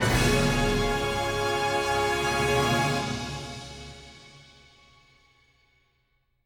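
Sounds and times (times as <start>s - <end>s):
clear fanfare: 0.0s - 4.5s.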